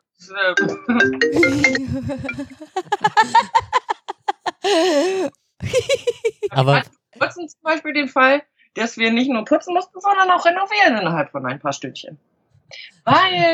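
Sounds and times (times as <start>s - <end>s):
speech: 0.2s - 3.6s, 4.6s - 13.5s
melodic phone ringtone: 0.6s - 2.4s
person laughing: 1.3s - 6.9s.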